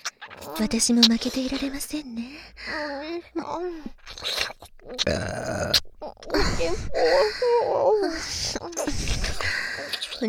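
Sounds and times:
wet mouth noises: 0.0s - 2.2s, 3.0s - 7.3s, 8.1s - 10.2s
soft voiced vocal sounds: 0.0s - 10.2s
speech: 0.0s - 10.2s
rough gravelly belch: 4.7s - 7.2s.

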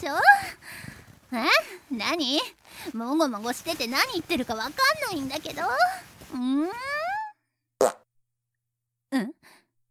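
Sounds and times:
speech: 0.0s - 0.3s, 1.3s - 7.0s
farting: 7.8s - 8.0s.

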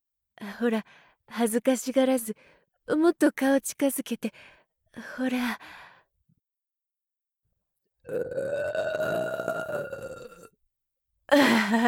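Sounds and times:
speech: 0.6s - 5.8s, 8.1s - 10.0s, 11.3s - 11.8s
person burping after eating extra-garlic ramen: 8.1s - 10.5s.

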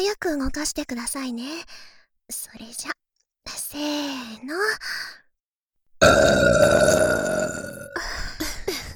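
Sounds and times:
speech: 0.0s - 5.2s, 6.0s - 7.7s
loud deliberate burp after drinking carbonated water: 6.0s - 8.0s.

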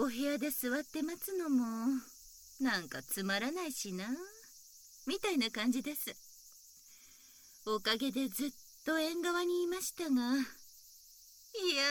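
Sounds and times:
speech: 0.0s - 4.4s, 5.0s - 6.2s, 7.6s - 10.6s, 11.5s - 11.8s
cicadas singing in summer heat by a veranda: 0.0s - 11.8s.

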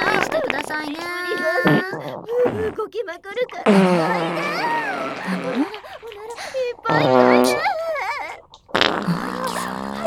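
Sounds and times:
long buzzing fart: 0.0s - 2.8s, 3.6s - 6.1s, 6.9s - 7.8s, 8.7s - 10.0s
squeaky fart: 0.0s - 2.8s, 3.5s - 7.8s, 8.7s - 10.0s
speech: 0.8s - 7.7s.

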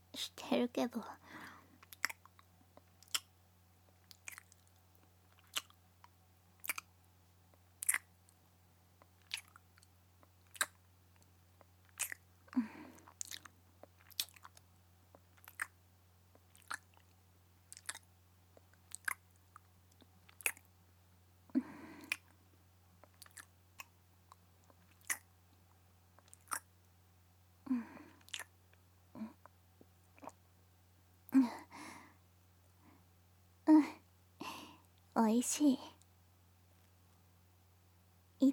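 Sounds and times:
low constant hum: 0.0s - 38.5s
speech: 0.5s - 1.2s, 35.3s - 35.9s
chewing crunchy food: 1.8s - 3.3s, 3.9s - 6.9s, 7.8s - 8.4s, 9.0s - 12.2s, 12.9s - 20.7s, 23.0s - 25.3s, 26.2s - 26.7s, 28.2s - 28.5s.

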